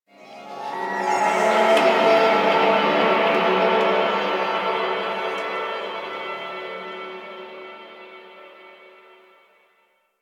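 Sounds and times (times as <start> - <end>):
echoing ambience in an amphitheatre: 0.1 - 8.3.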